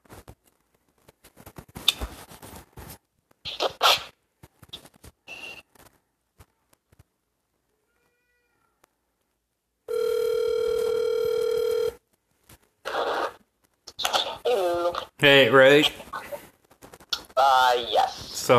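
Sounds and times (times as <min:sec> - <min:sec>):
steady electronic telephone hold tone: 0:09.9 - 0:12.0
people talking in short bursts: 0:14.0 - 0:16.4, 0:17.2 - 0:18.5.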